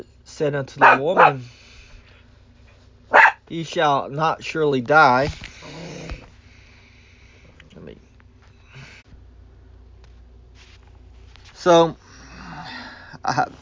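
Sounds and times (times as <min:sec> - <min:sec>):
speech: 0:00.0 - 0:01.6, 0:03.5 - 0:05.5, 0:11.6 - 0:12.0, 0:13.2 - 0:13.6
low steady hum: 0:00.0 - 0:13.6
restless dog's sharp whining yelp: 0:00.8 - 0:01.4, 0:03.1 - 0:03.4
restless dog snorting and snuffling: 0:05.5 - 0:06.3.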